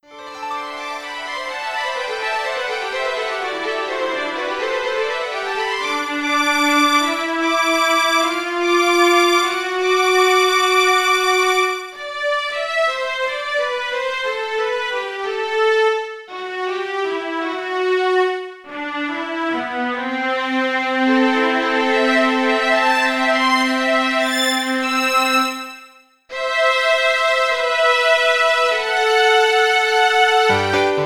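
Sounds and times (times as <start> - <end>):
waltz for two violins and piano: 0.0 - 31.0.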